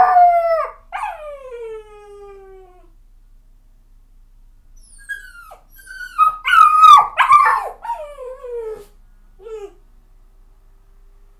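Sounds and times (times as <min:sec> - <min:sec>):
puppy whining and howling: 0:00.0 - 0:02.9, 0:04.8 - 0:09.8.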